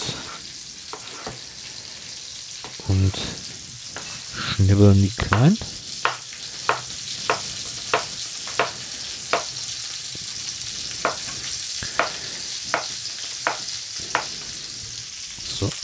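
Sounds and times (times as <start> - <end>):
zucchini strips sizzling in a frying pan: 0.0 - 15.8
speech: 2.9 - 3.5, 4.6 - 5.8
utensil tapping or scraping the pan: 5.2 - 9.6, 11.0 - 14.4.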